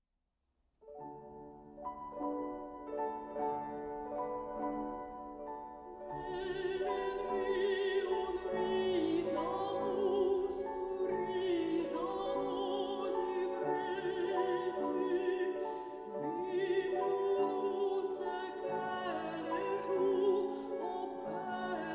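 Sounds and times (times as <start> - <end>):
piano or harp: 0.9 - 21.9
cello: 1.1 - 21.9
person singing a barcarolle: 6.0 - 21.9.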